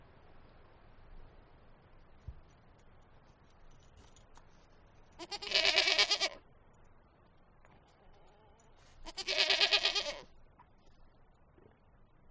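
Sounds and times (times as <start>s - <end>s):
goat bleating: 5.2s - 6.4s, 9.0s - 10.3s.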